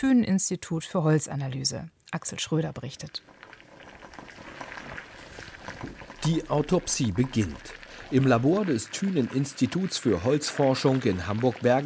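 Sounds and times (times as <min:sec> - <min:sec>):
speech: 0:00.0 - 0:03.5, 0:05.8 - 0:11.8
water boiling in a small laboratory beaker with a wood cube: 0:02.8 - 0:11.8.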